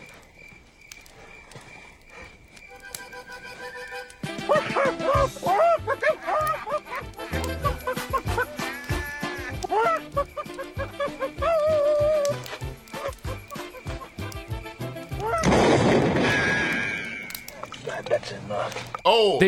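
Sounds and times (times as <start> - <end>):
voices in a film scene: 0.9 - 19.4
laughter: 4.2 - 14.4
gunshots from a film scene: 15.4 - 17.2.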